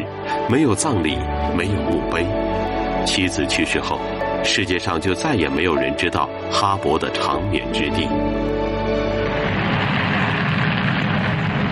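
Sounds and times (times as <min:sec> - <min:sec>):
speech: 0:00.5 - 0:08.6
space shuttle launch roar carrying the Hubble Space Telescope: 0:08.4 - 0:11.7.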